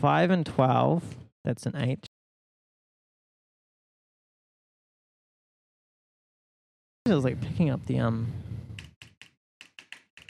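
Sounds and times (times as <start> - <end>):
speech: 0.0 - 2.1, 7.1 - 8.4
computer keyboard typing: 8.8 - 10.2.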